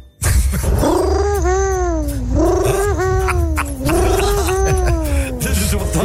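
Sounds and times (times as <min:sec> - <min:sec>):
person imitating an owl call with wavering vocal cries: 0:00.6 - 0:05.7
laughter: 0:02.6 - 0:05.4.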